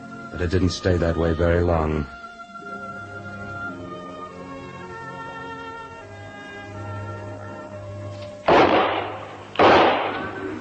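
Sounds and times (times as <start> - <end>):
speech: 0.3 - 2.2
gunshots at night near a cattle herd: 8.5 - 10.4.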